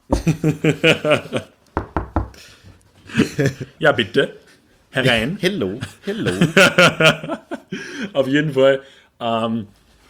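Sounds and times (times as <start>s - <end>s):
knocking on a door: 0.1s - 0.4s, 1.8s - 2.4s
laughter: 0.1s - 1.6s, 3.1s - 3.8s, 5.7s - 8.1s
speech: 0.2s - 1.6s, 3.4s - 7.4s, 8.1s - 9.8s.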